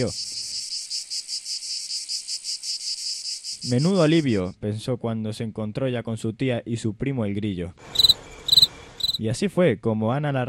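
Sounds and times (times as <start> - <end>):
speech: 0.0 - 0.4, 3.6 - 7.9, 9.2 - 10.4
cicada singing in a city park: 0.0 - 4.5, 7.8 - 9.2.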